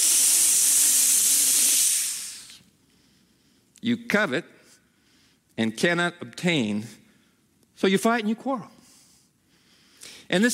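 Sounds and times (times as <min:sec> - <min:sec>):
steam hissing from boiling water: 0:00.0 - 0:02.6
speech: 0:03.8 - 0:04.6, 0:05.6 - 0:07.0, 0:07.8 - 0:08.8, 0:10.3 - 0:10.5.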